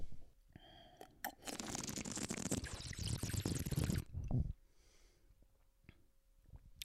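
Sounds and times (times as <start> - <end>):
bubbling gurgling water as a person drinks: 1.6 - 4.1.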